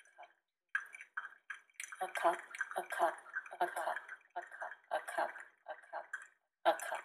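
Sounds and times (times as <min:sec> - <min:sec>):
coffee dripping into a cup: 0:00.0 - 0:07.0.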